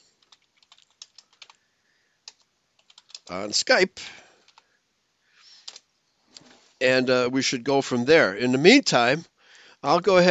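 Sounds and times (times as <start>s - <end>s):
typing a message on a computer keyboard: 0.0s - 1.6s, 2.2s - 3.3s, 4.4s - 4.7s, 5.6s - 5.8s
speech: 3.3s - 4.2s, 6.8s - 10.2s.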